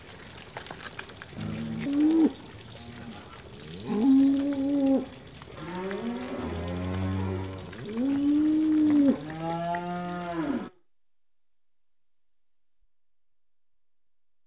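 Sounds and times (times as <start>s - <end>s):
cows walking in mud: 0.0s - 10.7s
cows lowing with long sustained moos: 1.4s - 10.8s.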